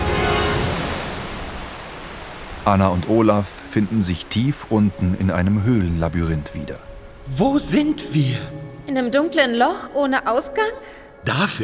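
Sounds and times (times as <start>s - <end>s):
underground waterfall rushing into a cave: 0.0s - 8.8s
speech: 2.6s - 11.6s.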